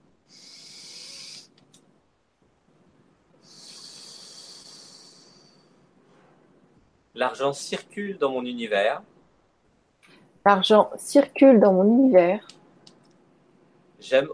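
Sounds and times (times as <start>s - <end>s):
slow deep breath: 0.3s - 1.5s, 3.4s - 6.6s
speech: 7.2s - 9.1s, 10.4s - 12.5s, 14.0s - 14.3s.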